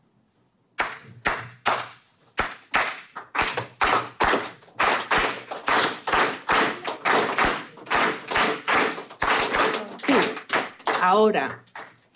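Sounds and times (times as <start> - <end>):
hand claps beating out the Cuban clave rhythm: 0.8 - 12.1
speech: 11.1 - 11.6.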